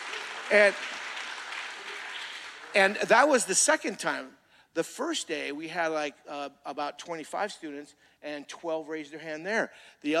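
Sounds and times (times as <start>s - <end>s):
crowd clapping: 0.0s - 3.7s
speech: 0.5s - 1.0s, 2.8s - 10.1s.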